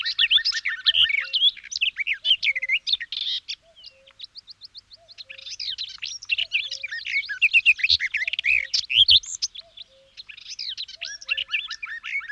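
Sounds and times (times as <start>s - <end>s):
garden warbler song: 0.0s - 12.3s.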